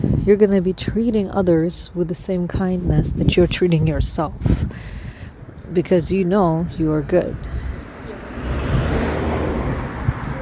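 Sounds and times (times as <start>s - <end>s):
speech: 0.2s - 5.0s, 5.7s - 7.6s
cars passing by: 5.0s - 10.4s.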